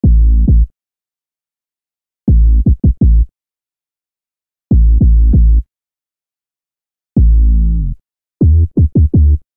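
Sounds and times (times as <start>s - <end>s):
83 bpm bassline in A minor: 0.0s - 0.7s, 2.3s - 3.3s, 4.7s - 5.7s, 7.2s - 9.5s.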